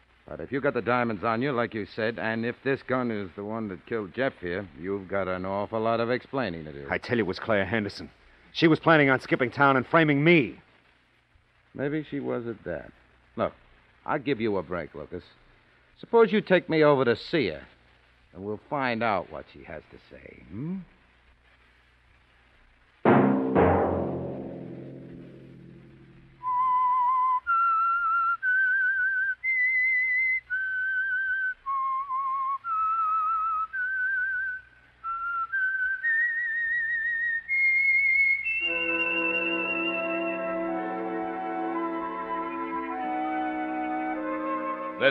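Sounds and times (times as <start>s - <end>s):
speech: 0.3s - 10.7s, 11.7s - 15.4s, 16.0s - 21.0s
full orchestral sting: 23.1s - 26.5s, 38.6s - 45.0s
lone whistled melody of a radio programme theme: 26.4s - 45.0s.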